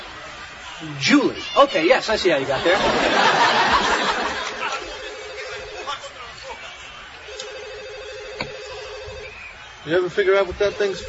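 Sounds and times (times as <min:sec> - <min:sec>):
chatter: 0:00.0 - 0:11.0
speech: 0:00.8 - 0:03.9, 0:09.8 - 0:11.0
people laughing: 0:02.3 - 0:06.8
telephone ringing: 0:03.1 - 0:06.1, 0:07.3 - 0:09.3, 0:10.5 - 0:11.0.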